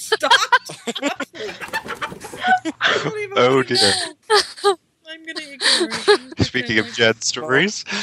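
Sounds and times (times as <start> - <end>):
laughter: 0.0 - 4.8, 5.4 - 7.1
faint hum: 0.0 - 8.0
chicken clucking: 1.4 - 2.6
speech: 3.4 - 4.2, 6.6 - 8.0.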